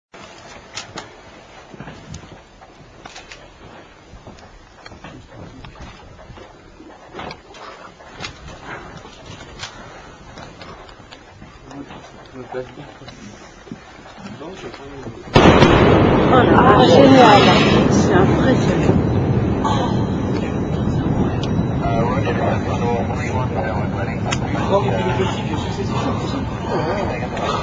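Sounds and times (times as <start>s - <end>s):
Concorde breaking the sound barrier: 15.3s - 27.6s.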